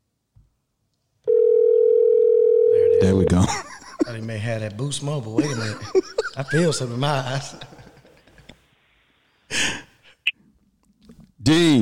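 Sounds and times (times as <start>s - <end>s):
outgoing phone call ringing tone: 1.3s - 3.4s
speech: 3.0s - 7.8s, 11.5s - 11.8s
laughter: 3.4s - 4.3s, 5.3s - 8.6s.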